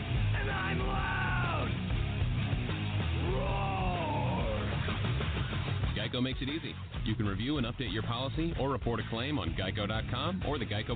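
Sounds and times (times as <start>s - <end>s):
loud distorted heavy metal music: 0.0s - 10.9s
person yelling and screaming in heavy metal style: 0.3s - 1.7s, 3.2s - 4.8s
speech: 6.2s - 10.9s.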